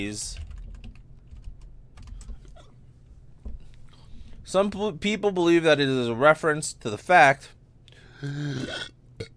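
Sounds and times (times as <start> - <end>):
speech: 0.0 - 0.4, 4.5 - 7.6, 8.2 - 9.3
person burping into a microphone: 8.2 - 9.3.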